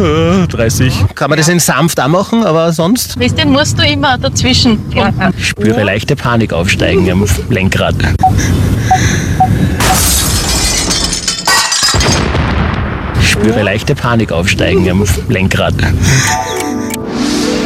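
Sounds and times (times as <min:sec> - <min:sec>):
speech: 0:00.5 - 0:10.2, 0:13.4 - 0:16.8
car crash sound effect with crunching impacts and shattering: 0:09.8 - 0:13.2
booming explosion sound effect: 0:11.9 - 0:16.1.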